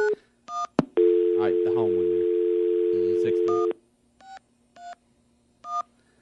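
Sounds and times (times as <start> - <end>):
telephone dial tone: 1.0 - 3.7.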